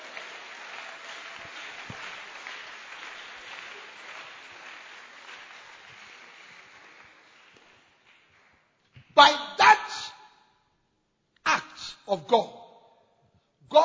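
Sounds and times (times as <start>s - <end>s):
audience clapping hands: 0.0s - 8.7s
speech: 9.2s - 9.4s, 12.3s - 12.6s.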